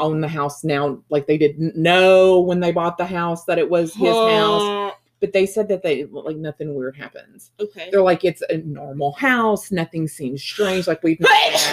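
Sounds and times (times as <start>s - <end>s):
speech: 0.0s - 11.7s
loud breathy sneeze: 11.2s - 11.7s.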